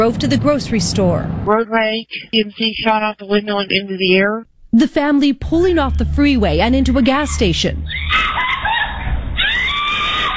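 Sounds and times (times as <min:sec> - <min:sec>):
speech: 0:00.0 - 0:08.4
mother screaming on surveillance video at a gas station: 0:07.0 - 0:10.3.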